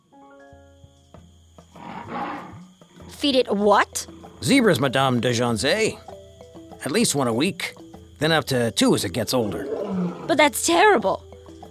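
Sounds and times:
lion cub roaring with a low rumbling growl: 1.8 - 3.2, 9.4 - 10.4
speech: 3.2 - 6.1, 6.8 - 11.2.

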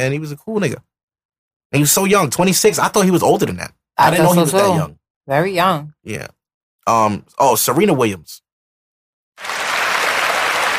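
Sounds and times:
speech: 0.0 - 0.9, 1.7 - 8.4
applause of many hands clapping: 9.4 - 10.7.

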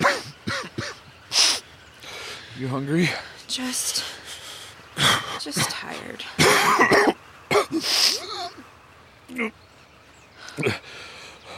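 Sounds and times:
person clearing throat: 0.0 - 1.0, 6.4 - 8.5
person coughing up blood: 0.0 - 1.0, 6.4 - 8.6
speech: 2.6 - 4.1, 5.0 - 9.6, 10.6 - 10.9.

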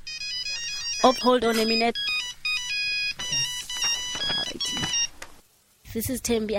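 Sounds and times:
cell phone alarm ringing with a bright electronic melody: 0.0 - 5.2
speech: 1.0 - 2.1, 6.0 - 6.5.

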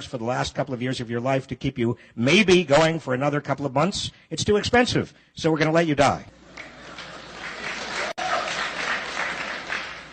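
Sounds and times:
speech: 0.0 - 6.4
person clapping: 6.6 - 10.1.

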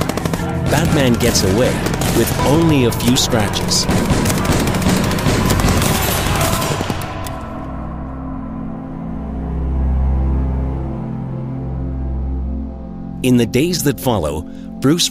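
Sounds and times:
rapid overlapping gunshots in a dramatized gangster shootout: 0.0 - 7.6
speech: 0.7 - 4.3, 13.2 - 15.0
low sustained rumbling drone: 1.3 - 13.2.

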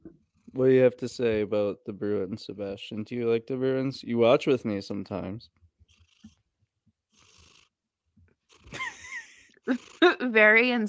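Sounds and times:
cat purring: 0.0 - 3.3, 4.9 - 10.2
speech: 0.6 - 5.6, 9.7 - 10.8.

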